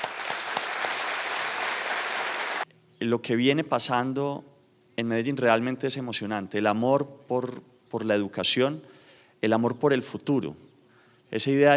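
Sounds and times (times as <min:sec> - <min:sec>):
audience applause at an event in Medellín: 0:00.0 - 0:02.6
speech: 0:03.0 - 0:10.6, 0:11.3 - 0:11.7.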